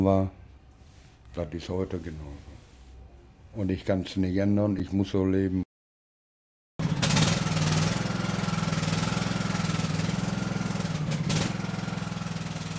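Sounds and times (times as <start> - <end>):
speech: 0.0 - 0.4, 1.4 - 2.5, 3.6 - 5.6
riding lawn mower engine starting and idling: 6.8 - 12.7.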